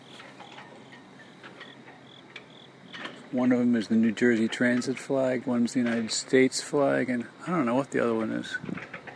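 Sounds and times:
cricket chirping in a tree at Hamilton train station in New Jersey: 0.0 - 9.1
speech: 3.3 - 8.9.

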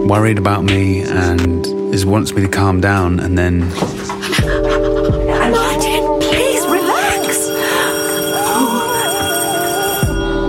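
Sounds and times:
speech: 0.1 - 4.5
laughter: 3.7 - 9.3
home electronic doorbell ringing: 6.2 - 10.4.

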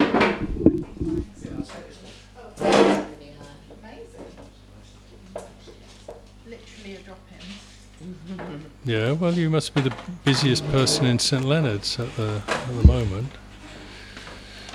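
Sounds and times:
chair pulled up to a table scraping across the floor: 0.0 - 1.7, 10.5 - 11.1
quiet murmur: 0.3 - 1.9, 9.3 - 13.8
speech: 8.6 - 13.4.

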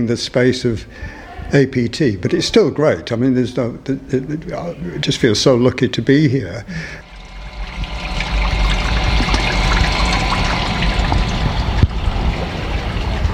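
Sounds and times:
speech: 0.0 - 7.0
creek water flowing: 7.0 - 13.3.

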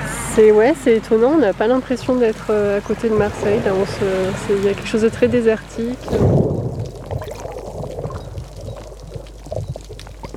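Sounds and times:
speech: 0.4 - 6.6
surf washing against rocks on the coast near Marseille: 2.8 - 10.3.

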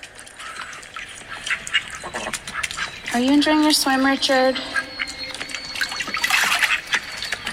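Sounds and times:
call duck quacking: 0.4 - 7.2
speech: 3.2 - 4.8.

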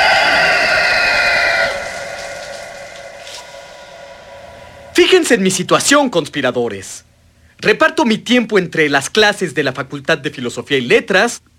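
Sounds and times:
rooster crowing: 0.0 - 5.2
speech: 5.0 - 11.5.

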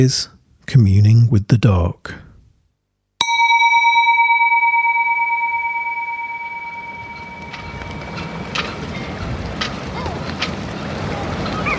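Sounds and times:
speech: 0.0 - 2.3
sharp bell-like tone: 3.2 - 9.1
gusty wind: 7.3 - 11.7.

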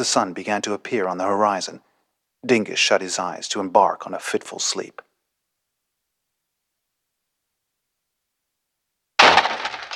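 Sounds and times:
speech: 0.0 - 5.1
brittle shattering rattle of a potted plant: 9.2 - 9.9
door banging into a potted succulent: 9.2 - 9.9.

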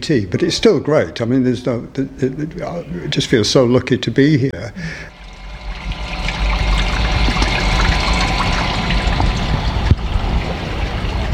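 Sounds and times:
speech: 0.0 - 5.1
creek water rushing: 5.1 - 11.3.

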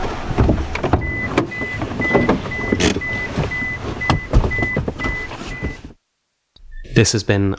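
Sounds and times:
car mechanical rumble: 0.0 - 6.0
clunks: 0.0 - 6.0
speech: 7.0 - 7.5.

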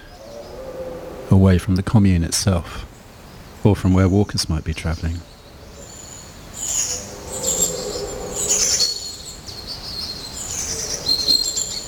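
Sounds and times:
treecreeper calling: 0.0 - 1.8, 2.9 - 11.8
speech: 1.3 - 2.9, 3.6 - 5.3
long-tailed tit calling: 4.0 - 11.8
blue tit calling: 4.9 - 11.8.

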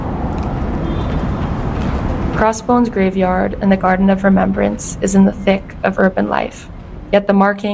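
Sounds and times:
dense city traffic rumbling on a London street near London Bridge station: 0.0 - 7.7
faint car horn: 0.8 - 1.4
speech: 2.4 - 7.7.

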